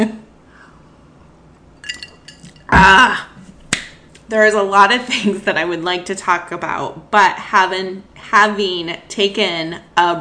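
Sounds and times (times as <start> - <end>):
glasses clinking in a toast: 1.8 - 2.8
speech: 4.3 - 10.2.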